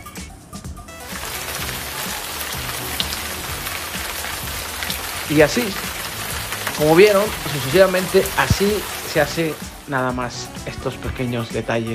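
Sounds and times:
steady rain pouring down: 0:01.0 - 0:10.4
speech: 0:05.3 - 0:05.9, 0:06.8 - 0:11.9.

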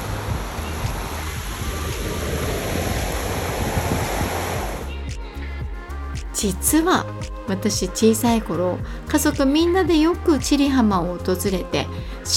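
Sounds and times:
ocean waves washing onto a sandy beach: 0:00.0 - 0:05.0
speech: 0:06.4 - 0:12.3.

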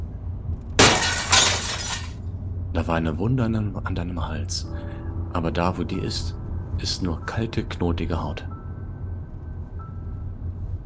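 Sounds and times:
low steady hum: 0:00.0 - 0:10.8
window glass shattering: 0:00.8 - 0:02.2
speech: 0:02.8 - 0:08.5.

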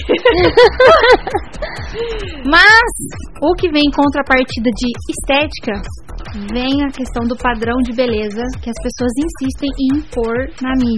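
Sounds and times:
laughter: 0:00.0 - 0:02.5
speech: 0:00.0 - 0:10.9
person imitating heavy out-of-breath panting: 0:01.4 - 0:02.5.

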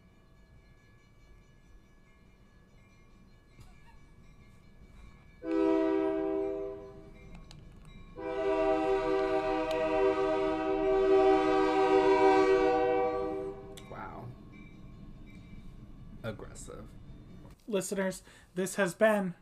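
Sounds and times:
low rumble of a passing train: 0:00.0 - 0:17.6
loud train horn blasts: 0:05.4 - 0:07.2, 0:08.2 - 0:13.8
speech: 0:16.6 - 0:17.1, 0:17.7 - 0:19.4.

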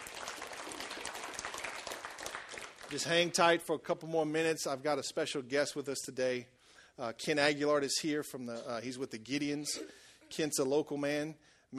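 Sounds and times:
audience applause with hand clapping: 0:00.0 - 0:03.2
speech: 0:02.9 - 0:11.7.

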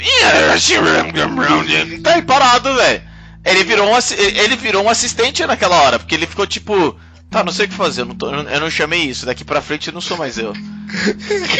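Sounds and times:
voice imitating a dial-up modem with warbling and screeching tones: 0:00.2 - 0:02.4
speech: 0:00.3 - 0:11.5
laughter: 0:10.0 - 0:11.5.

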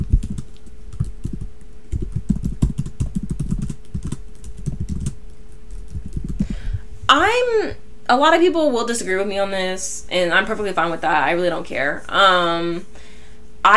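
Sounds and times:
fast typing on a computer keyboard: 0:00.1 - 0:06.4
speech: 0:07.2 - 0:12.9.

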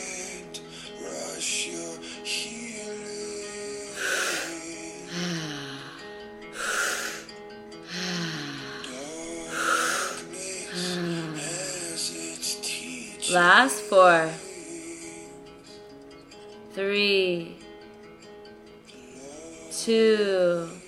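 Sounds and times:
deep breathing during a breathing exercise: 0:03.9 - 0:11.6
speech: 0:13.3 - 0:14.4, 0:16.8 - 0:17.5, 0:19.9 - 0:20.7.

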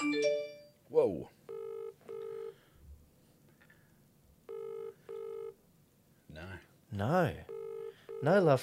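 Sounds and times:
speech: 0:01.0 - 0:01.4, 0:07.0 - 0:07.5, 0:08.2 - 0:08.6
outgoing phone call ringback tone in double-ring pattern: 0:01.5 - 0:02.6, 0:04.5 - 0:05.6, 0:07.5 - 0:08.4.

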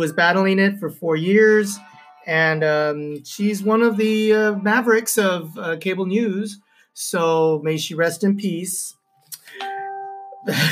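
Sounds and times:
speech: 0:00.0 - 0:09.7, 0:10.4 - 0:10.7
phone notification bell chime: 0:09.5 - 0:10.7.

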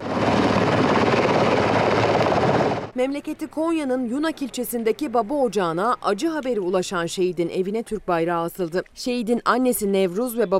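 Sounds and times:
helicopter engine roaring and rotor chopping at a military ceremony in Hakkari: 0:00.0 - 0:02.9
speech: 0:03.0 - 0:10.5.

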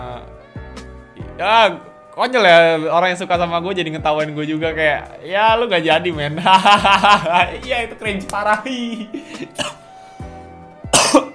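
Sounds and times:
speech: 0:00.2 - 0:09.8
laughter: 0:06.3 - 0:08.2
person coughing: 0:09.1 - 0:09.9, 0:10.9 - 0:11.3
throaty breaths: 0:09.1 - 0:10.7.

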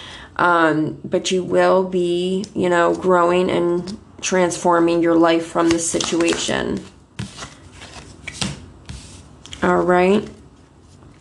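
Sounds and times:
speech: 0:00.4 - 0:07.0, 0:09.6 - 0:10.4
tarot cards drawn from a deck: 0:05.7 - 0:09.7.

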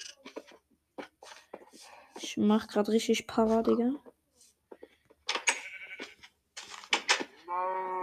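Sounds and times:
speech: 0:02.3 - 0:04.1
sheep bleating: 0:05.5 - 0:06.1, 0:07.4 - 0:08.0.

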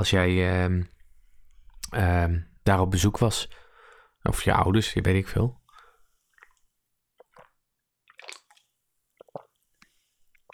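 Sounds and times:
speech: 0:00.0 - 0:00.9, 0:01.9 - 0:03.6, 0:04.2 - 0:05.6
squishy gulps: 0:06.3 - 0:10.5
slurping of bubble milk tea from a can through a straw: 0:07.2 - 0:10.5.

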